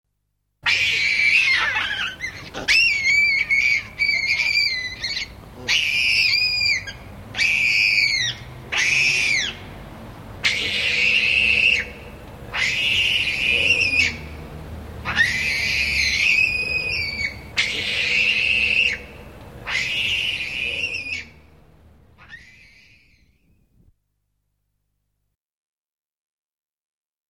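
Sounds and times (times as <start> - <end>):
monkey howling: 0.6 - 9.8, 10.4 - 21.5, 22.2 - 23.4.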